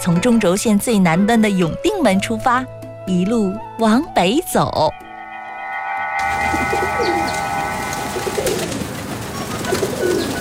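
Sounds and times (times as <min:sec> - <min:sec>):
speech: 0:00.0 - 0:05.1
large flock of pigeons whistling overhead in the sky over Beijing: 0:06.2 - 0:10.3
pigeon wings fluttering: 0:06.2 - 0:10.3.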